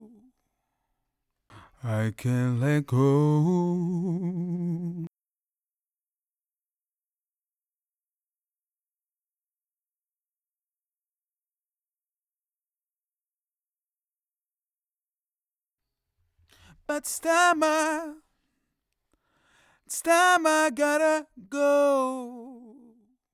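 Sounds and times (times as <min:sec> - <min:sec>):
backing vocals: 0:01.5 - 0:05.1, 0:16.7 - 0:18.2, 0:19.9 - 0:23.0.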